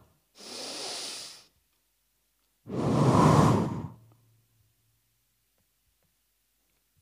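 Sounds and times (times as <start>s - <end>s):
breathy gusts of rushing wind: 2.7s - 4.0s.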